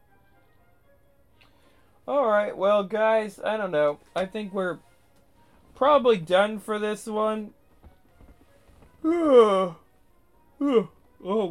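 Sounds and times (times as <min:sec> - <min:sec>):
speech: 0:02.1 - 0:04.9, 0:05.8 - 0:07.6, 0:09.0 - 0:09.8, 0:10.6 - 0:11.4
drawn-out voiced yawn: 0:09.0 - 0:09.9, 0:10.6 - 0:11.4
shorter groaning exhalations: 0:09.0 - 0:09.9.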